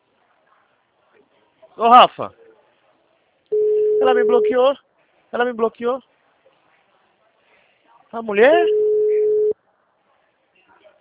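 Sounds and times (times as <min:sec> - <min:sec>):
speech: 0:01.8 - 0:02.4, 0:04.0 - 0:06.1, 0:08.1 - 0:08.8
telephone busy signal: 0:03.6 - 0:04.5, 0:08.6 - 0:09.5.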